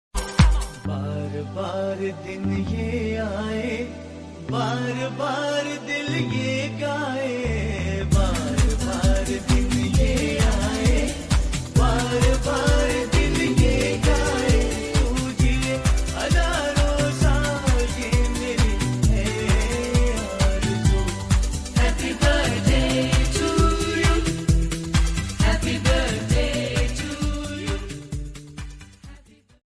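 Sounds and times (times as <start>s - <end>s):
man singing a song in Hindi: 0.5s - 24.7s, 25.4s - 28.2s.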